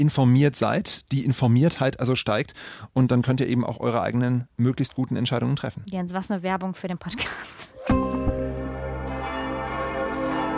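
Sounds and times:
speech: 0.0 - 8.4
church bells ringing in Halle: 7.8 - 10.5.

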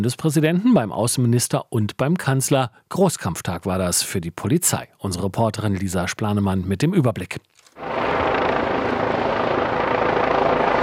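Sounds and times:
speech: 0.0 - 8.0
helicopter rotor roar: 7.8 - 10.8.

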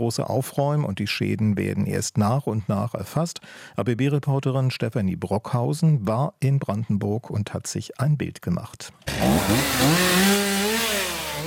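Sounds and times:
speech: 0.0 - 10.5
chainsaw revving while cutting through fallen trees: 9.0 - 11.4.

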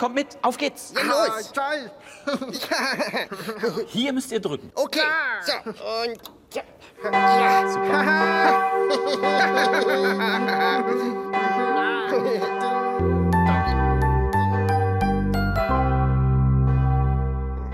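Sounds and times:
speech: 0.0 - 13.2
laughter: 2.1 - 3.9, 7.9 - 11.4
cathedral bell rung by pressing a button: 7.0 - 17.7.

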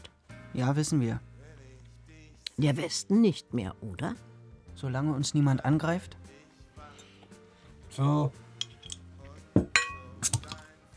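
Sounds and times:
speech: 0.6 - 1.3, 2.6 - 6.4, 8.0 - 8.4
glasses clinking in a toast: 6.9 - 7.4, 8.6 - 10.7.

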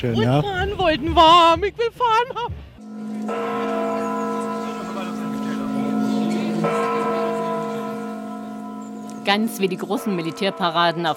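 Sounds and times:
speech: 0.0 - 4.4, 9.2 - 11.1
Spassky Tower clock bells chiming at a military farewell parade in Wünsdorf: 2.8 - 11.1.

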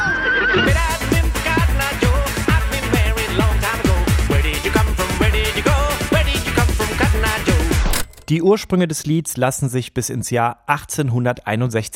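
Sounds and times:
horse whinnying: 0.0 - 0.7
loud upbeat music with a steady pounding beat: 0.6 - 8.0
speech: 8.3 - 11.9.

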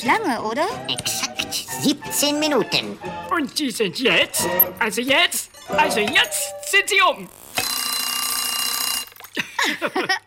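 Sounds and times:
speech: 0.0 - 7.4, 9.6 - 10.2
alarm clock ringing: 5.6 - 9.2
laughter: 9.4 - 10.2.

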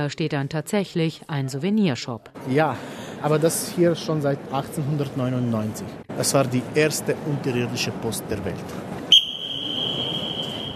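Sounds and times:
speech: 0.0 - 9.0
man whistling with echo in cave: 9.1 - 10.7.

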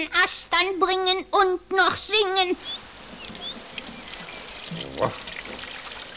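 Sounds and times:
speech: 0.0 - 3.6, 4.7 - 5.3
faint bird chirps: 2.5 - 6.1
water from a watering can pouring and splashing over a hut: 2.7 - 6.1.

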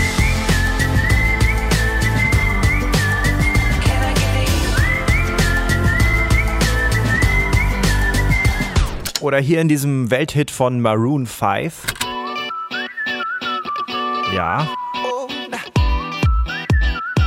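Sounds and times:
bright whistled melody in a pop song: 0.0 - 9.0, 12.0 - 17.2
pop backing track with steady drums and bass: 0.0 - 9.0, 14.0 - 17.2
speech: 9.3 - 12.1, 14.3 - 14.8.

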